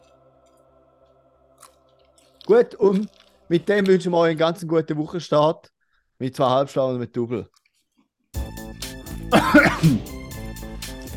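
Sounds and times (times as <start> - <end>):
wet chewing with lip smacks: 1.6 - 3.9
speech: 2.5 - 7.6, 9.3 - 10.2.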